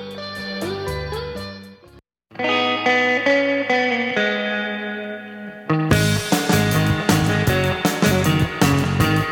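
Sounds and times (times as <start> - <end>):
twangy effects-laden electric guitar: 0.0 - 1.7, 2.3 - 9.3
punchy drums: 5.9 - 9.3.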